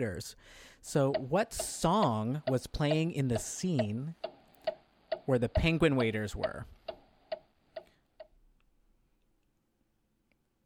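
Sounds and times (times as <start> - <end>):
speech: 0.0 - 4.3, 5.3 - 6.8
quiz countdown clock ticking: 0.8 - 8.4.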